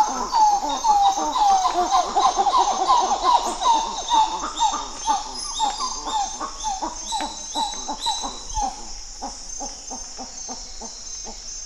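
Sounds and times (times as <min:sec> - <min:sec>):
coppery titi monkey duet: 0:00.0 - 0:09.3.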